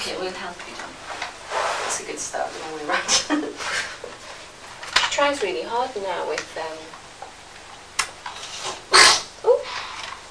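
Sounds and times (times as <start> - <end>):
speech: 0.1 - 1.0, 2.0 - 3.9, 5.1 - 7.0
sneeze: 8.6 - 9.8.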